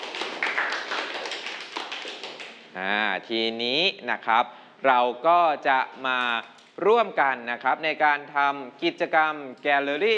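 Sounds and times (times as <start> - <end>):
classroom applause for a student: 0.0 - 2.7
speech: 2.8 - 10.1.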